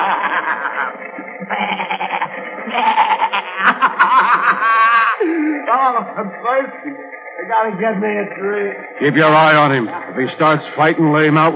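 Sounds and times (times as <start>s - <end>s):
billy goats bleating: 0.0s - 5.2s
laughter: 0.0s - 7.0s
speech: 5.8s - 11.5s.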